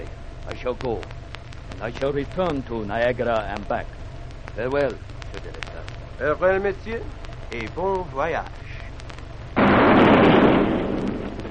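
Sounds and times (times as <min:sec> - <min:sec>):
speech: 0:00.6 - 0:04.0, 0:04.6 - 0:08.7
cannon shot fired as a sailing ship sets sail: 0:09.6 - 0:11.4.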